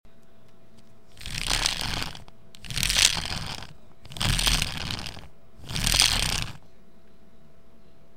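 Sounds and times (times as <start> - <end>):
carraca ratchet rattle: 1.1 - 6.6.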